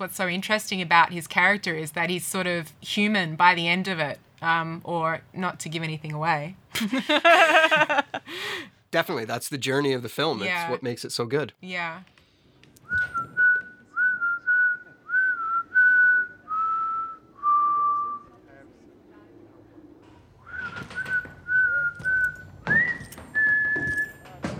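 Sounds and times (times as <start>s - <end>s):
speech: 0.0s - 12.2s
faint noise: 0.0s - 24.5s
laughter: 6.8s - 8.4s
man whistling a slow tune: 12.8s - 18.3s, 20.5s - 24.2s.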